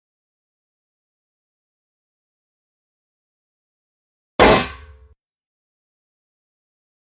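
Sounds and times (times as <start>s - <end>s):
armor being hit: 4.4s - 5.0s.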